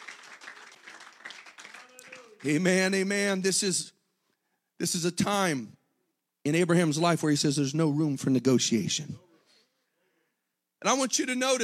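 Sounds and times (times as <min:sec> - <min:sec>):
audience clapping in dense applause: 0:00.0 - 0:03.0
speech: 0:02.4 - 0:04.0, 0:04.8 - 0:05.8, 0:06.4 - 0:09.2, 0:10.8 - 0:11.6.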